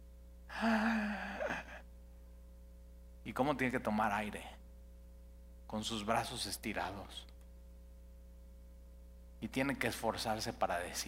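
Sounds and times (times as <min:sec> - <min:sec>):
person imitating labored gasping breath: 0:00.5 - 0:01.8
speech: 0:03.3 - 0:04.6, 0:05.7 - 0:07.3, 0:09.4 - 0:11.0.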